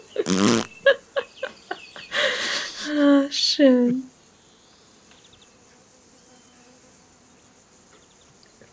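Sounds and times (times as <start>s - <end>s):
cartoonish fart sound effect of a dodo jumping over a fence: 0.2s - 0.8s
speech: 3.6s - 4.1s.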